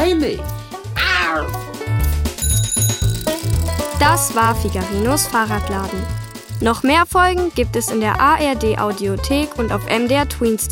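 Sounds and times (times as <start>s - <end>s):
speech: 0.2s - 0.6s, 1.3s - 1.8s, 4.1s - 10.6s
tomcat meowing with downward-sliding pitch: 1.0s - 1.6s
bouncy music: 1.0s - 10.5s
bright bell-like chime: 2.4s - 5.1s.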